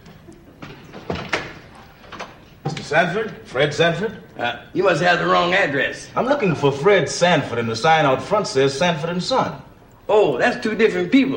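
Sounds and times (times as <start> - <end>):
door opening with dull clunks: 0.0 - 3.4
speech: 2.9 - 11.3.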